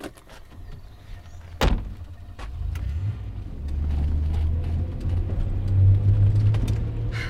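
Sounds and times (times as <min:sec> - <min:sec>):
car engine rumble while driving: 0:00.0 - 0:07.2
car door thud: 0:01.6 - 0:02.0.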